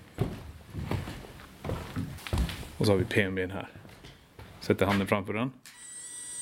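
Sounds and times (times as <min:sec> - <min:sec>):
footsteps on wooden boards: 0:00.0 - 0:03.2, 0:03.8 - 0:05.1
speech: 0:02.8 - 0:03.8, 0:04.7 - 0:05.7.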